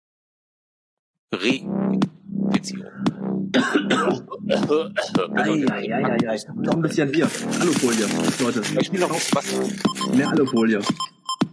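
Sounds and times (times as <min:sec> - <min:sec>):
speech: 0:01.3 - 0:11.2
man clearing his throat: 0:03.5 - 0:05.6
man coughing: 0:03.5 - 0:05.6.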